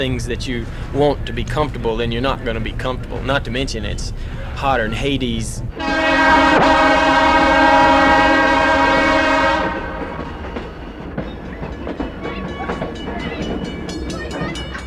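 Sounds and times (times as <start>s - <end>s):
speech: 0.0s - 7.9s
passenger train rolling along the rails: 0.0s - 14.8s
train horn: 5.8s - 10.6s.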